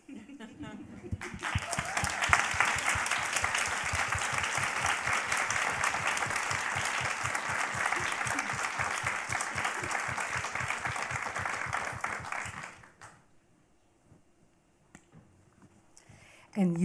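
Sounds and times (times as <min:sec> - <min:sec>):
audience applause: 0:01.1 - 0:13.1
speech: 0:16.6 - 0:16.8.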